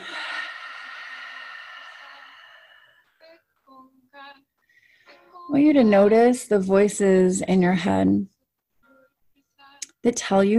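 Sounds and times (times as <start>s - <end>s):
big breath during a guided breathing exercise: 0.0s - 3.3s, 4.6s - 5.3s
speech: 5.5s - 8.3s, 10.0s - 10.5s.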